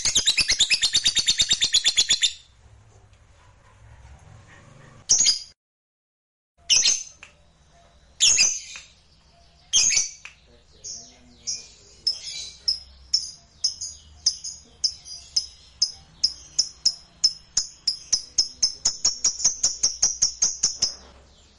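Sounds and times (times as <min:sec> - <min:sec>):
lovebird squawking and chirping: 0:00.0 - 0:02.5, 0:05.1 - 0:05.5, 0:06.6 - 0:07.2, 0:08.2 - 0:10.2, 0:12.0 - 0:21.1.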